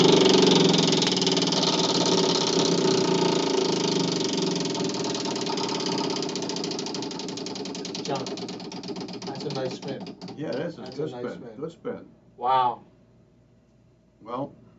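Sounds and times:
prize wheel being spun: 0.0s - 11.2s
people talking: 9.3s - 12.8s, 14.2s - 14.5s.

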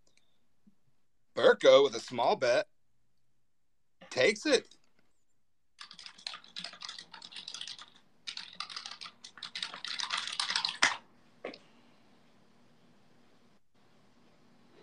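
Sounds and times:
speech: 1.4s - 2.7s, 4.1s - 4.7s
typing on a computer keyboard: 5.8s - 11.0s.

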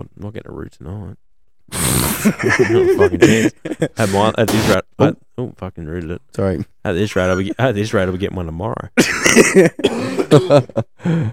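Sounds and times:
speech: 0.0s - 11.3s
laughter: 2.2s - 4.6s, 9.0s - 10.9s
person coughing: 9.0s - 10.7s.

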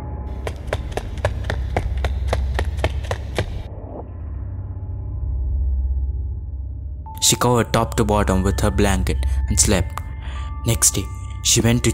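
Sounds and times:
low rumble: 0.0s - 7.1s
quick crisp footsteps approaching: 0.3s - 3.7s
speech: 7.3s - 10.0s, 10.6s - 11.9s.

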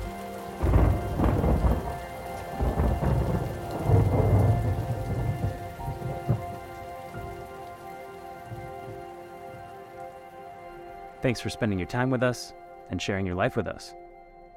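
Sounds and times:
heavy steady rain in a lightning storm: 0.0s - 12.0s
deep rolling thunder: 0.1s - 7.5s
speech: 11.2s - 14.0s.

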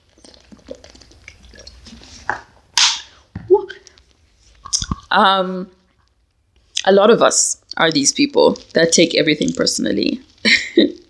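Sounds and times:
person sipping and gulping water: 0.0s - 3.2s, 4.6s - 5.1s
speech: 5.2s - 5.8s, 6.9s - 11.0s.

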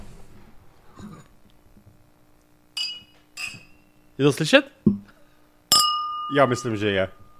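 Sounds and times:
glasses clinking in a toast: 2.8s - 4.0s, 5.7s - 7.3s
speech: 4.2s - 5.1s, 6.3s - 7.2s.

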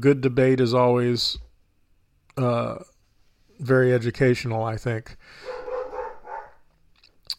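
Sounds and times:
speech: 0.0s - 1.5s, 2.4s - 2.9s, 3.6s - 5.6s
dog barking: 5.4s - 6.6s.

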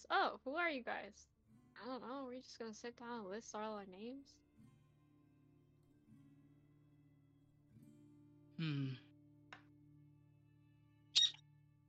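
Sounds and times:
speech: 0.0s - 4.4s, 8.6s - 9.1s
pet bird squawking indoors: 11.2s - 11.4s.

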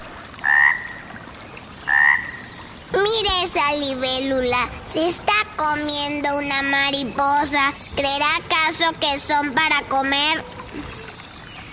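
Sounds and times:
toads croaking: 0.4s - 1.1s, 1.8s - 2.6s
speech: 3.1s - 10.9s.

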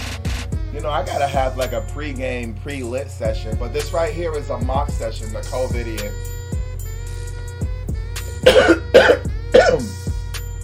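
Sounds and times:
speech: 0.8s - 6.4s, 8.4s - 10.0s
harsh raspy coughs: 8.3s - 10.0s.

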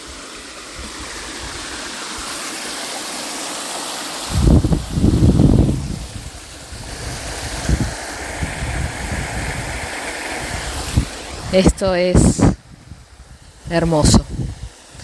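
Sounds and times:
waterfall roaring heard from a lookout: 0.0s - 15.0s
heavy wind gusts thumping against the microphone: 4.3s - 15.0s
speech: 11.5s - 12.5s, 13.7s - 14.2s.

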